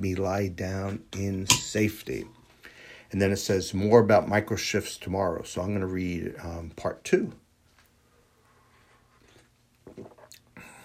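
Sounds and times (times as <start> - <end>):
speech: 0.0 - 2.4, 3.1 - 7.4
person sipping hot coffee: 9.2 - 10.6
swallow: 9.8 - 10.8.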